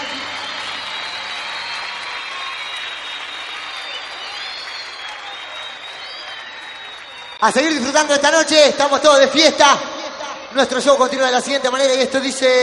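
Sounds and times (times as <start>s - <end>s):
applause at a festive night show: 0.0s - 8.8s
crowd cheering at a festive night show: 0.0s - 12.6s
speech: 7.4s - 9.9s, 10.5s - 12.6s.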